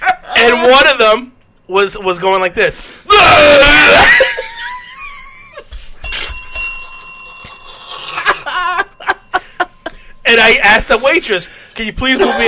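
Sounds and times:
speech: 0:00.4 - 0:04.4, 0:10.7 - 0:12.4
laughter: 0:03.7 - 0:05.7, 0:07.9 - 0:10.1, 0:12.0 - 0:12.4
bell ringing: 0:06.0 - 0:11.8.

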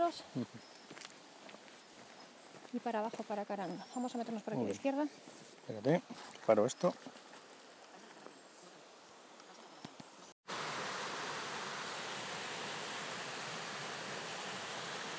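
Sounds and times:
speech: 0:00.0 - 0:00.8, 0:02.7 - 0:07.2
river water rushing at a confluence of two rivers: 0:10.5 - 0:15.1.

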